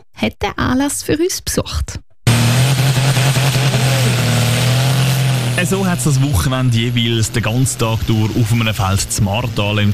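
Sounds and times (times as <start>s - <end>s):
speech: 0.2s - 2.0s, 5.6s - 9.9s
tractor engine revving under heavy load during tractor pulling: 2.3s - 9.9s.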